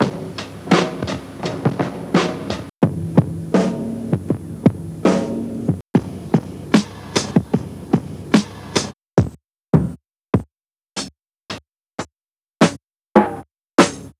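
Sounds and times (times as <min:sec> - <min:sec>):
lo-fi tape drum kit: 0:00.0 - 0:09.9, 0:12.6 - 0:14.1.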